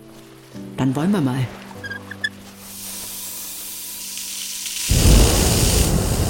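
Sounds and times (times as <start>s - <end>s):
speech: 0.8s - 1.6s
homemade gas burner flame roaring into a hot-air balloon envelope: 2.7s - 6.2s.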